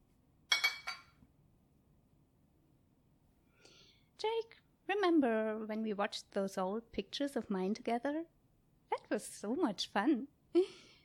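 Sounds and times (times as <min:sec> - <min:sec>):
glasses clinking in a toast: 0:00.5 - 0:01.2
speech: 0:04.2 - 0:08.4, 0:09.0 - 0:10.9.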